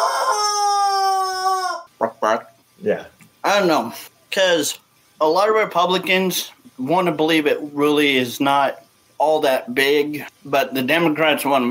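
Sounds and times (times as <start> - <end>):
chicken squawking call: 0.0 - 1.9
speech: 2.2 - 11.7.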